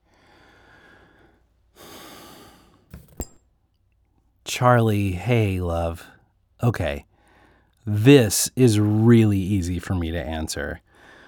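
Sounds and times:
single deep breath taken in: 0:00.1 - 0:03.0, 0:07.2 - 0:07.8, 0:10.9 - 0:11.2
speech: 0:04.5 - 0:07.1, 0:07.9 - 0:10.8.

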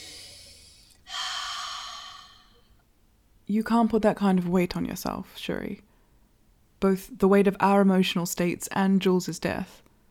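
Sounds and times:
deep breath to calm near-hyperventilation: 0:00.0 - 0:02.8
speech: 0:03.5 - 0:05.9, 0:06.8 - 0:09.8.

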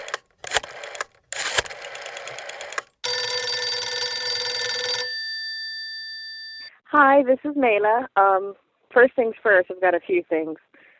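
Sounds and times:
Skype call ringtone: 0:03.0 - 0:06.7
speech: 0:07.0 - 0:10.6.

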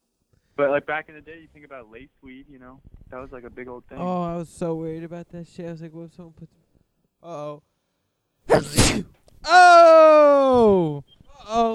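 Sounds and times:
speech: 0:00.6 - 0:06.6, 0:07.2 - 0:07.7, 0:08.5 - 0:11.7
person sneezing into the microphone: 0:08.5 - 0:09.2.

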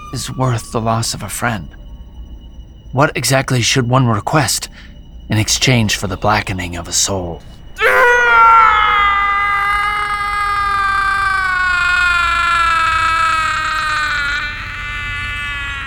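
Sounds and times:
speech: 0:00.1 - 0:01.8, 0:02.9 - 0:07.9
man's dying scream of agony: 0:07.8 - 0:15.8.

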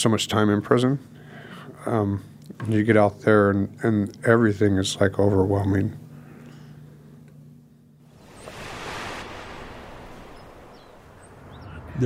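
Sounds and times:
speech: 0:00.0 - 0:01.2, 0:01.8 - 0:06.0
small waves lapping at the shore: 0:08.0 - 0:12.0
steady low rumble of surf: 0:08.0 - 0:12.0.

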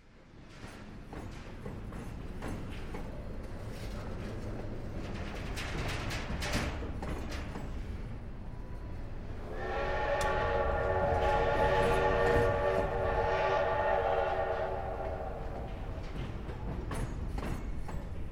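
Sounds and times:
train rumbling as it slows and passes through a town: 0:00.0 - 0:18.3
long loud train horn blast: 0:09.4 - 0:16.0.

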